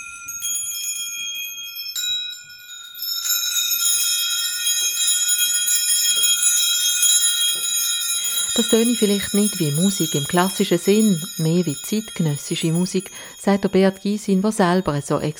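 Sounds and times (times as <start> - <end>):
many small bells hanging on threads jingled by children's fingers: 0.0 - 15.3
speech: 8.6 - 15.3.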